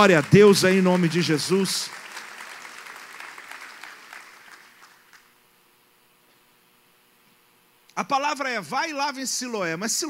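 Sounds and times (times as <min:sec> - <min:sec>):
speech: 0:00.0 - 0:02.0, 0:08.0 - 0:10.0
congregation applause: 0:00.0 - 0:05.3.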